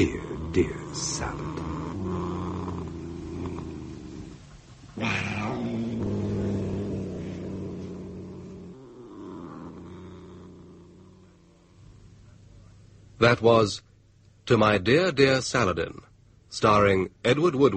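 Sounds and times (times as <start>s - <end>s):
speech: 0.0s - 1.6s, 5.0s - 5.3s, 13.2s - 13.9s, 14.5s - 17.7s
sleek fat cat purring: 0.0s - 12.8s.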